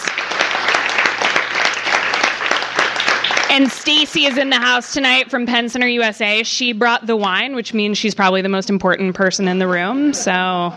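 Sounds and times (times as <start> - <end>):
audience applause: 0.0 - 4.9
speech: 3.6 - 10.7.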